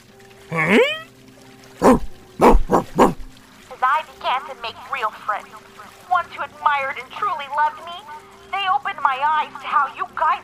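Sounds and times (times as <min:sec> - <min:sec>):
speech: 0:00.5 - 0:01.0, 0:04.5 - 0:10.4
dog whining: 0:00.5 - 0:01.1, 0:01.8 - 0:03.3
dog barking: 0:01.8 - 0:03.3.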